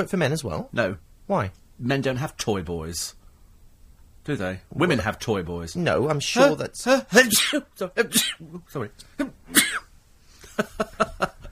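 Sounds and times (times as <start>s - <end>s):
speech: 0.0s - 3.2s, 4.2s - 9.9s, 10.6s - 11.3s
sneeze: 7.2s - 8.4s, 9.5s - 9.9s.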